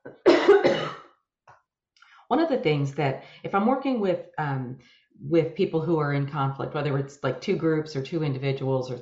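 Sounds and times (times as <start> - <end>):
person coughing: 0.1 - 1.1
speech: 2.3 - 9.0.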